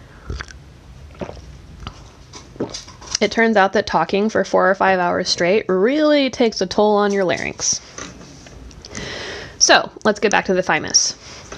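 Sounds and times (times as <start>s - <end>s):
sipping tea from a cup: 0.2s - 3.2s
speech: 3.2s - 7.9s, 9.6s - 11.2s.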